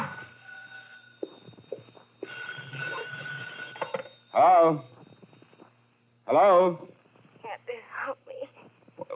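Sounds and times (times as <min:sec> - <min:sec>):
telephone ringing in an apartment: 0:00.0 - 0:05.8
speech: 0:04.4 - 0:04.9, 0:06.3 - 0:06.9.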